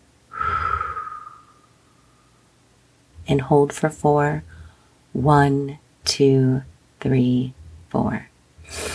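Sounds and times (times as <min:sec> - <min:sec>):
person breathing during a morning breathing exercise: 0:00.3 - 0:02.5, 0:04.4 - 0:05.1, 0:08.6 - 0:08.9
speech: 0:03.3 - 0:04.6, 0:05.2 - 0:08.9.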